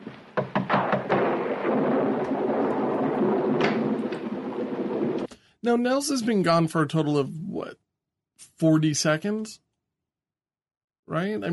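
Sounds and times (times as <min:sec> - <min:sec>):
thunder rumbling during a storm: 0:00.0 - 0:05.3
speech: 0:05.6 - 0:07.8, 0:08.4 - 0:09.6, 0:11.1 - 0:11.5.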